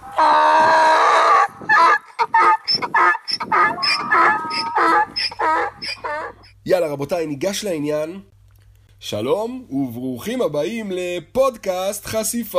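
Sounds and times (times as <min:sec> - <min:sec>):
donkey braying: 0:00.0 - 0:06.6
speech: 0:06.9 - 0:08.3, 0:09.0 - 0:12.5.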